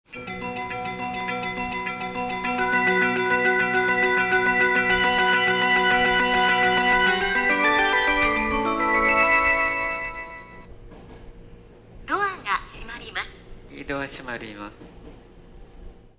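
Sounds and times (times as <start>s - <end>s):
melody: 0.1s - 10.7s.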